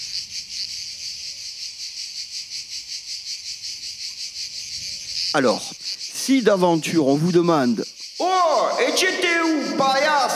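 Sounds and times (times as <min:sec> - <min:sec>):
cicadas buzzing in a high-pitched chorus: 0:00.0 - 0:10.3
speech: 0:05.3 - 0:10.3.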